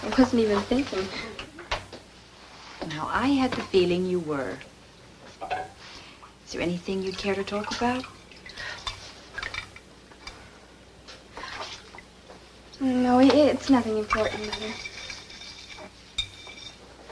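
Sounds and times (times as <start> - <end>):
speech: 0.0 - 1.4, 2.8 - 4.7, 6.5 - 8.2, 12.8 - 14.9
splashing while washing up: 6.9 - 9.8, 13.4 - 16.8
dishes and cutlery clattering while washing up: 14.1 - 17.0.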